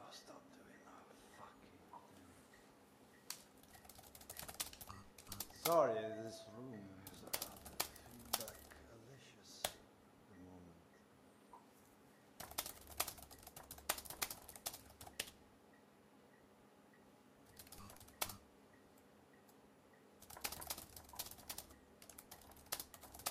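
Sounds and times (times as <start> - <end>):
low steady hum: 0.0 - 23.2
faint typing on a computer keyboard: 3.6 - 5.8, 7.0 - 8.8, 12.4 - 15.4, 17.5 - 18.4, 20.2 - 23.2
speech: 5.7 - 7.0.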